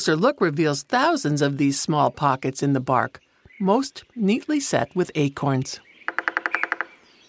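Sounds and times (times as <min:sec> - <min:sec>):
speech: 0:00.0 - 0:05.9
acorn woodpecker rapid call at granaries: 0:05.8 - 0:07.2.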